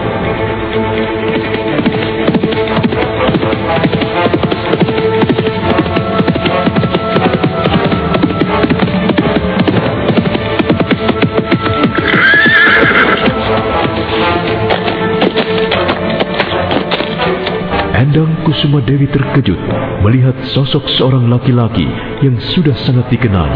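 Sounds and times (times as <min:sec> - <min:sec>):
horse hoofbeats: 0:00.1 - 0:19.3
horse whinny: 0:11.7 - 0:13.4
speech: 0:18.5 - 0:23.5.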